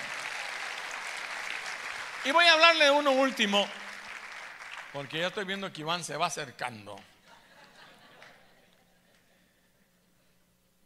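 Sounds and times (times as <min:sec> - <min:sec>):
large crowd applauding: 0:00.0 - 0:05.6
speech: 0:02.2 - 0:03.8, 0:04.9 - 0:07.1
laughter: 0:07.2 - 0:09.6.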